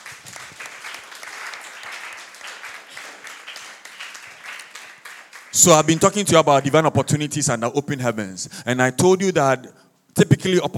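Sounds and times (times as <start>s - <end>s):
audience applause after a prayer: 0.0s - 6.4s
speech: 5.5s - 10.7s.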